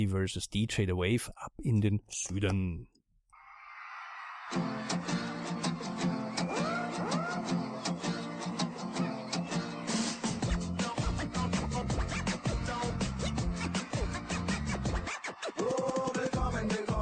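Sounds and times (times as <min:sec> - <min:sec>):
speech: 0:00.0 - 0:02.9, 0:04.5 - 0:05.4
upbeat pop dance track with driving beat and bright synths: 0:04.5 - 0:17.0.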